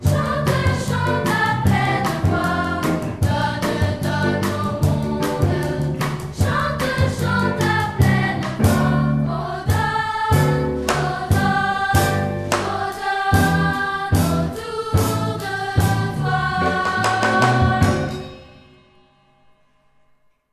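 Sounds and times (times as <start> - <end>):
women's voices singing in polyphony: 0.0 - 18.2.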